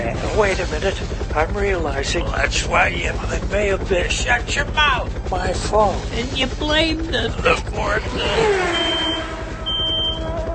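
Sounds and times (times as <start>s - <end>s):
steady low rumble: 0.0s - 10.5s
speech: 0.4s - 8.9s
pocket radar detector sounding shrill sustained electronic beeps: 8.3s - 10.5s.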